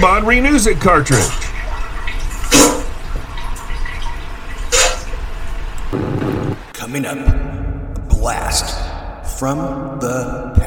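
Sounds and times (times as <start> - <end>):
speech: 0.0 - 1.5, 6.9 - 7.6, 8.2 - 10.6
running water from a sound machine: 0.0 - 6.0.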